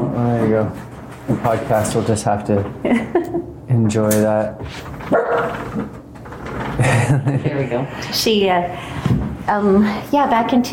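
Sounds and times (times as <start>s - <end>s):
speech: 0.2s - 6.0s, 6.8s - 10.7s
laughter: 2.8s - 3.6s, 6.7s - 8.0s
guard dog barking at noises outside: 5.1s - 5.6s.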